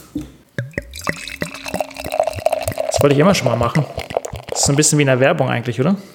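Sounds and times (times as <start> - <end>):
beer glugging from a bottle into a glass: 0.6 - 5.0
speech: 3.0 - 4.0, 4.6 - 6.1.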